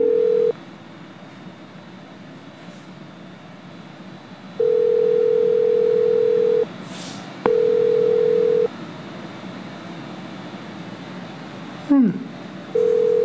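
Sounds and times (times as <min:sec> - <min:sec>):
telephone ringback tone on an outgoing call: 0:00.0 - 0:00.6, 0:04.6 - 0:06.7, 0:07.5 - 0:08.7, 0:12.7 - 0:13.2.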